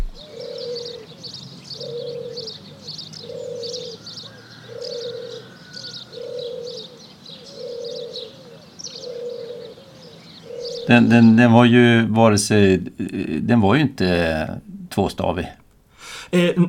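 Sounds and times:
hybrid dove cooing: 0:00.0 - 0:01.2, 0:01.8 - 0:11.6
higher-pitched birds chirping: 0:00.0 - 0:15.4
speech: 0:10.9 - 0:15.6, 0:16.3 - 0:16.6.

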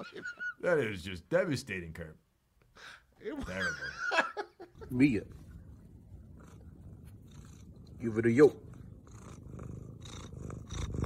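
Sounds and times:
speech: 0:00.0 - 0:05.4, 0:08.0 - 0:08.7
cat making a rumbling purr-like vocalization with trills: 0:04.7 - 0:11.0.

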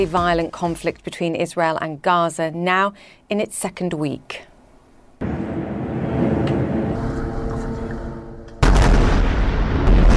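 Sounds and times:
speech: 0:00.0 - 0:04.5
airstrike explosions in Gaza: 0:05.2 - 0:07.5, 0:08.6 - 0:10.1
sustained roaring noise after airstrike blasts: 0:05.2 - 0:08.6.

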